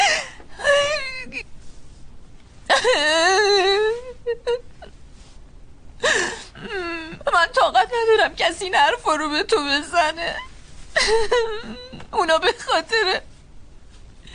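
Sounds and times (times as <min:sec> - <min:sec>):
person crying tearfully: 0:00.0 - 0:01.4, 0:02.7 - 0:04.9, 0:06.0 - 0:07.5, 0:11.0 - 0:13.2
speech: 0:08.2 - 0:10.5, 0:11.1 - 0:13.3.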